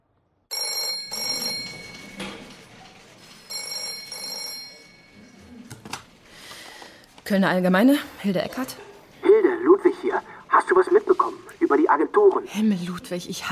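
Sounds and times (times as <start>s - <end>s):
telephone bell ringing: 0.5s - 2.7s, 3.4s - 5.5s
speech: 7.3s - 8.9s, 10.1s - 13.4s.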